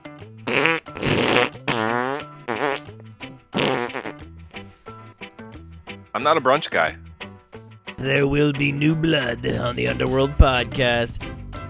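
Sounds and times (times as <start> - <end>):
fart noises: 0.5 - 4.8
speech: 6.2 - 7.0, 8.0 - 11.6.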